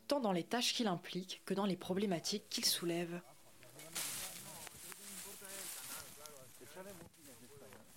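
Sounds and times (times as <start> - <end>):
speech: 0.1 - 4.0
steady scraping, hissing and rustling of debris clearing from an irrigation channel: 3.6 - 7.4.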